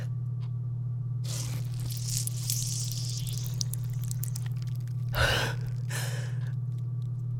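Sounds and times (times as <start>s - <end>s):
steady low hum: 0.0s - 7.3s
wet tearing and squishing from cutting along the stitching of a body: 1.3s - 7.1s.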